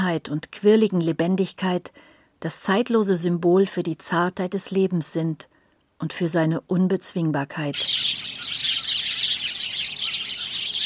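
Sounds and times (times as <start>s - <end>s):
speech: 0.1s - 8.7s
many birds chirping and twittering in chorus: 7.7s - 10.8s.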